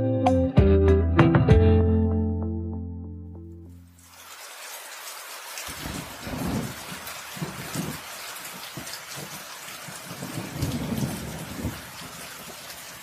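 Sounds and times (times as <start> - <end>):
tonal music: 0.0 - 4.0
steady heavy rain pouring down: 3.8 - 13.0
low rumbles of thunder rolling: 5.7 - 13.0.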